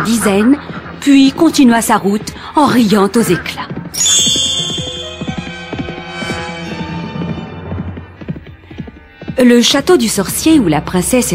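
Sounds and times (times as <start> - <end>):
speech: 0.0 - 4.0, 9.4 - 11.3
horse hooves clip-clopping: 0.0 - 10.7
sustained music: 3.9 - 9.7.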